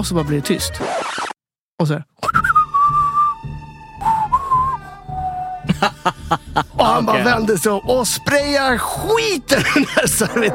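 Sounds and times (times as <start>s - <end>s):
speech: 0.0s - 1.2s, 1.8s - 2.4s, 5.8s - 10.5s
person whistling a western film theme melody: 2.2s - 5.6s
laughter: 5.6s - 7.3s, 9.5s - 10.5s.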